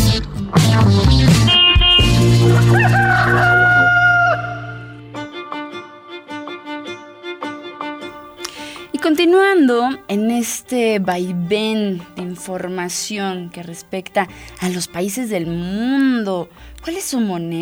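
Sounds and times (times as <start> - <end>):
sustained music bed: 0.0 - 17.6
rooster crowing: 2.6 - 5.0
speech: 9.8 - 17.6.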